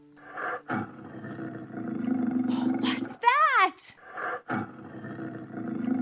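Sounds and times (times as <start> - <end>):
lion roaring: 0.2 - 3.1, 4.1 - 6.0
person asking a short question: 2.5 - 4.0.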